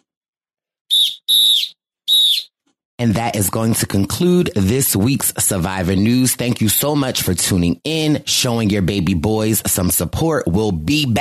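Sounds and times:
shrill whistle blasts: 0.9s - 2.6s
speech: 3.0s - 11.1s.

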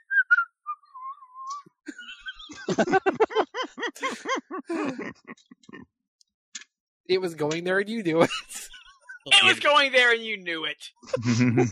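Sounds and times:
whistled tune with sliding notes: 0.0s - 1.8s
laughter: 1.9s - 5.8s, 8.1s - 9.6s, 11.0s - 11.7s
speech: 2.7s - 3.2s, 3.9s - 6.0s, 7.1s - 8.6s, 9.2s - 11.7s
rhythmic pitched vocal sounds: 4.0s - 5.8s, 9.2s - 9.6s, 11.1s - 11.7s.

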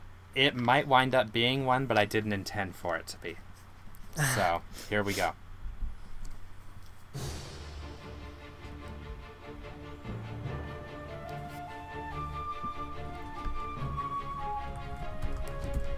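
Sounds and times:
speech: 0.4s - 3.5s, 4.2s - 5.4s
video game soundtrack music: 7.2s - 15.9s.

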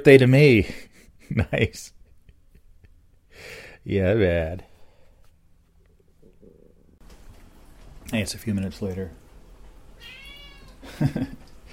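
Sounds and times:
speech: 0.0s - 2.0s, 3.4s - 4.7s, 8.1s - 9.2s, 10.8s - 11.4s
cat meowing: 10.0s - 10.8s.

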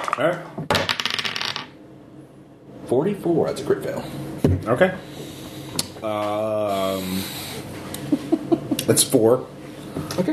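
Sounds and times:
speech: 0.2s - 0.7s, 2.9s - 5.3s, 6.0s - 7.7s, 8.9s - 9.6s, 10.2s - 10.3s
dice rattling and rolling out of a dice cup: 0.8s - 1.7s.

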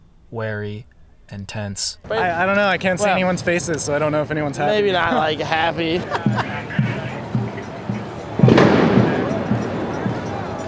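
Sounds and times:
dull low rhythmic thumps: 0.0s - 10.6s
speech: 0.3s - 7.0s
laughter: 2.0s - 10.6s
firework blast with crackling rumbling decay: 8.4s - 10.0s.

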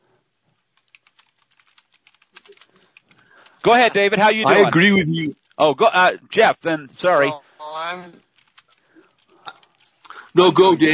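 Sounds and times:
keyboard typing: 0.7s - 4.3s, 8.2s - 10.7s
speech: 3.6s - 8.1s, 10.4s - 10.9s.

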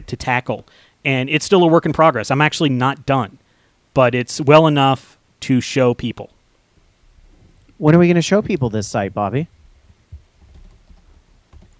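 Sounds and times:
speech: 0.1s - 3.4s, 4.0s - 6.4s, 7.8s - 9.6s
keys clacking on a computer keyboard: 10.4s - 11.7s.

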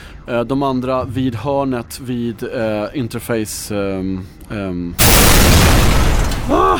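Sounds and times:
speech: 0.2s - 6.7s
loud deep explosion sound effect: 5.0s - 6.7s.

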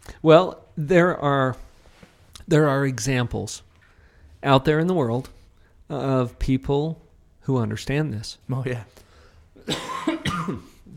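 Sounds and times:
speech: 0.2s - 1.6s, 2.5s - 3.7s, 4.4s - 9.0s, 9.6s - 10.7s
raspy throaty coughs: 9.6s - 10.9s.

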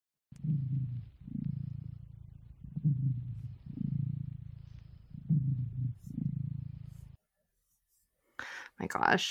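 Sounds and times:
domestic cat purring: 0.3s - 7.2s
speech: 0.5s - 1.1s, 8.8s - 9.2s.

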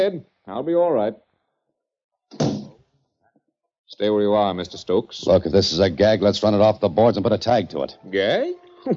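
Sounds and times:
speech: 0.0s - 1.2s, 2.3s - 2.6s, 3.9s - 8.9s
door swinging shut with a solid thud: 2.3s - 2.8s.

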